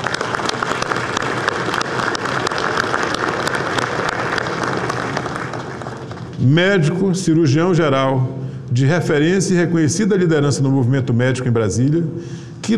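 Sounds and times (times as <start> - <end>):
room full of people applauding: 0.0 - 6.4
speech: 6.4 - 12.7.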